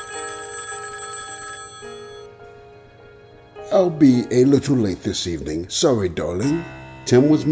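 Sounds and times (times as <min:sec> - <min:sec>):
telephone ringing with an electronic trill: 0:00.0 - 0:02.3
speech: 0:03.7 - 0:07.5.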